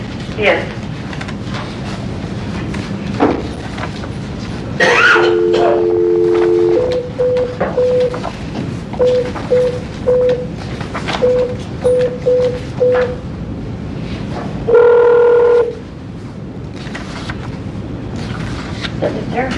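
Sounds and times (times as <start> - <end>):
steady hum of room noise: 0.0 - 19.5
speech: 0.4 - 0.8, 11.2 - 13.3
longer louder telephone tone: 5.0 - 8.2, 9.0 - 10.5, 11.2 - 13.2, 14.7 - 15.8
short telephone dialing beeps: 5.3 - 8.2, 9.0 - 10.5, 11.2 - 13.2.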